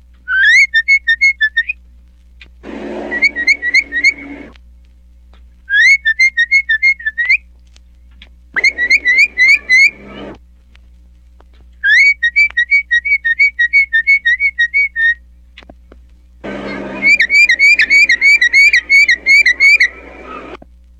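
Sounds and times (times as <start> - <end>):
mockingbird mimicking a person's whistle: 0.3 - 1.8, 2.8 - 4.5, 5.7 - 7.4, 8.6 - 10.3, 11.8 - 15.2, 16.6 - 20.6.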